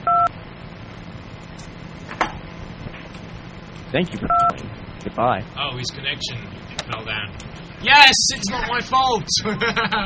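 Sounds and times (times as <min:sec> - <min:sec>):
telephone keypad DTMF tone for the 2 key on an automated phone menu: 0:00.0 - 0:00.3, 0:04.3 - 0:04.5
speech: 0:03.9 - 0:10.0
laughter: 0:08.5 - 0:10.0.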